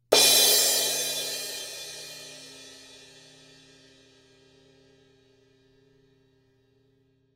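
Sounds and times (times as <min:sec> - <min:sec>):
medium thin crash cymbal: 0:00.1 - 0:03.8.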